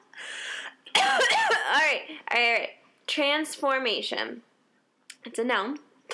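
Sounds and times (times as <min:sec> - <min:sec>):
person coughing and hacking: 0:01.0 - 0:01.9
speech: 0:02.3 - 0:04.5, 0:05.3 - 0:05.9.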